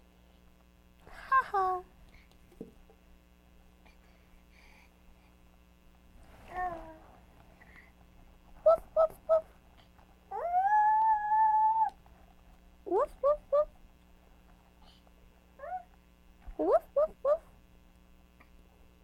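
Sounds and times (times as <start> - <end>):
steady low electrical hum: 0.0 - 19.0
dog whining, yelping and howling: 10.3 - 12.0.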